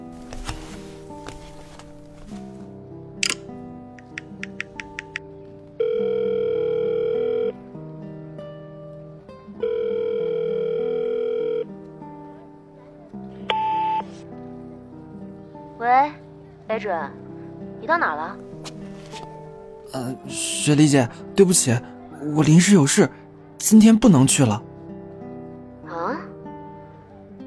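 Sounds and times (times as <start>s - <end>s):
soft music: 0.0s - 27.4s
outgoing telephone call ringback tones: 5.8s - 7.6s, 9.6s - 11.7s, 13.5s - 14.2s
outgoing telephone call dialing bleeps: 13.5s - 14.2s
speech: 16.8s - 17.2s, 17.9s - 18.4s, 19.9s - 24.7s.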